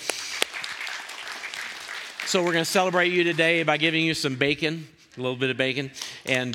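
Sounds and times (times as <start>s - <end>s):
sharp claps: 0.0s - 3.8s
room full of people applauding: 0.0s - 4.0s
speech: 2.3s - 6.5s.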